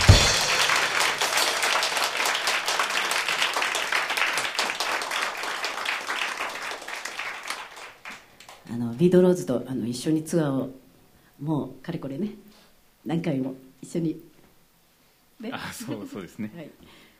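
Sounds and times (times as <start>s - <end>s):
audience applause for a band at a live show: 0.0s - 8.6s
speech: 9.0s - 10.8s, 11.4s - 14.3s, 15.4s - 17.0s.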